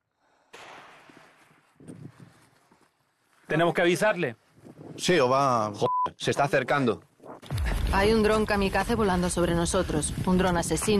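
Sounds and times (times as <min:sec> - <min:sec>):
gunfire blast from soldiers: 0:00.5 - 0:01.6
cluster of smaller gunfire cracks from soldiers: 0:00.5 - 0:01.8
speech: 0:03.5 - 0:04.4, 0:05.0 - 0:07.1, 0:07.9 - 0:10.9.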